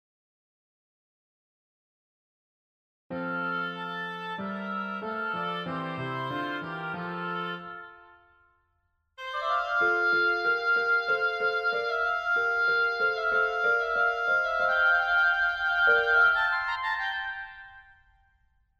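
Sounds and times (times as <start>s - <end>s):
oboe concerto with orchestra in F major: 3.1s - 8.3s, 9.2s - 18.0s.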